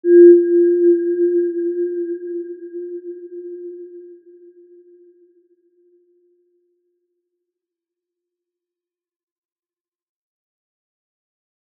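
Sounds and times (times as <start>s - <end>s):
healing soundscape: 0.0s - 5.2s.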